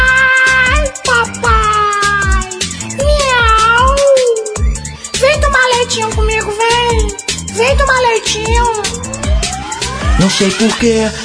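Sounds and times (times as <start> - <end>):
voice imitating cat meowing in sing-song cries: 0.0 - 4.6
steady thumping musical beat: 0.0 - 11.2
speech: 10.3 - 11.2.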